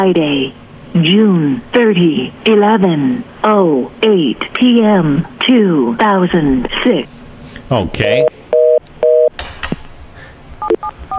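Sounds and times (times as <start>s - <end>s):
speech: 0.0s - 8.4s
telephone dial tone: 8.6s - 9.3s.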